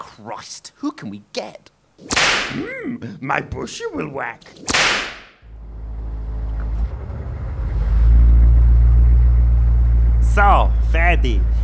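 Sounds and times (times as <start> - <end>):
speech: 0.2 - 5.1, 10.4 - 11.6
sharp whooshing sweep: 2.0 - 2.6, 4.6 - 5.4
8-litre V8 Humvee engine rumbling: 5.5 - 11.6.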